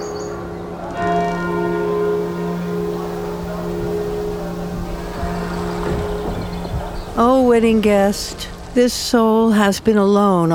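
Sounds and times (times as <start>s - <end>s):
small vesper bell tolling: 1.0s - 7.5s
low rumble: 1.8s - 10.0s
speech: 7.2s - 10.5s.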